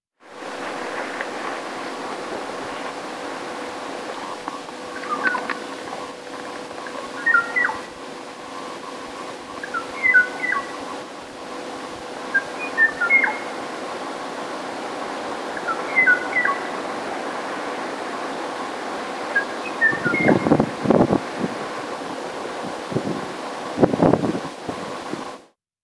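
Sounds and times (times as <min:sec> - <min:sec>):
steady hiss: 0:00.2 - 0:25.4
o'o bird singing short clear whistled phrases: 0:07.2 - 0:07.9, 0:09.6 - 0:10.9, 0:12.3 - 0:13.5, 0:15.6 - 0:16.7, 0:19.4 - 0:20.6.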